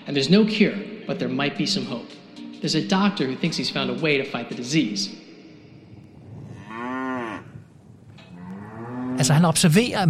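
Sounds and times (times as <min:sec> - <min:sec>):
speech: 0:00.1 - 0:05.2, 0:09.2 - 0:10.0
cow mooing with a drawn-out lowing call: 0:06.1 - 0:09.3.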